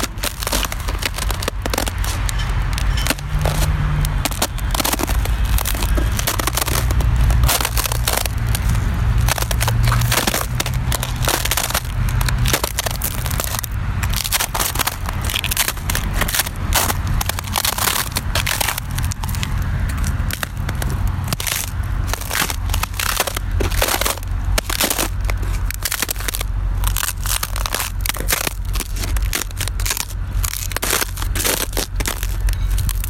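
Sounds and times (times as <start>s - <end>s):
ice cracking and crunching in winter: 0.0s - 33.0s
low rumble of passing traffic: 0.0s - 33.0s.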